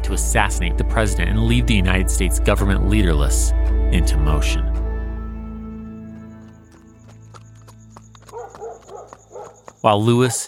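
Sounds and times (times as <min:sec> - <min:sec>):
speech: 0:00.1 - 0:04.7, 0:09.8 - 0:10.4
horse hooves clip-clopping at a walking pace on a hard surface: 0:04.7 - 0:10.4
faint dog barking: 0:08.3 - 0:09.6.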